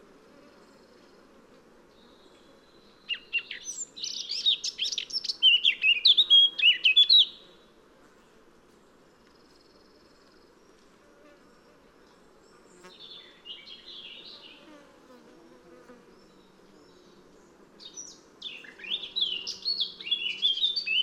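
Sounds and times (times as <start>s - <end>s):
Eurasian blackcap singing, Sylvia atricapilla: 3.1s - 7.4s, 17.8s - 21.0s.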